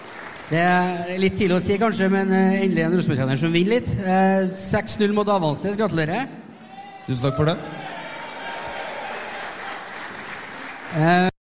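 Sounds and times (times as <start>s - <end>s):
live audience applauding: 0.0s - 1.3s, 7.7s - 11.3s
speech: 0.5s - 6.4s, 7.1s - 7.9s, 10.9s - 11.3s
cheering and crowd noise: 6.6s - 11.3s.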